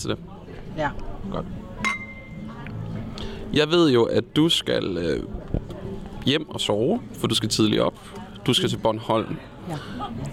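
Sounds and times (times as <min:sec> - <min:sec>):
speech: 0:00.0 - 0:01.9, 0:03.5 - 0:05.4, 0:06.2 - 0:10.3
faint voices murmuring: 0:00.0 - 0:10.3
glasses clinking together in a toast: 0:01.8 - 0:02.6.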